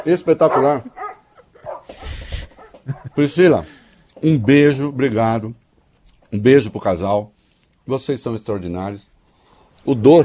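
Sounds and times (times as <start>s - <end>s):
speech: 0.0s - 1.0s, 3.0s - 5.6s, 6.3s - 7.3s, 7.9s - 9.1s, 9.8s - 10.2s
dog barking and yipping: 0.0s - 3.2s
laughter: 2.7s - 3.6s.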